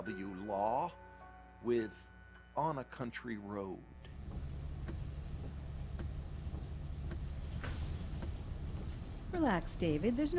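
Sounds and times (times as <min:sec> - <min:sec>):
speech: 0:00.0 - 0:01.0, 0:01.6 - 0:04.0, 0:09.4 - 0:10.3
faint regular ticking clicks: 0:04.0 - 0:09.4
low rumble of engines: 0:04.1 - 0:10.3.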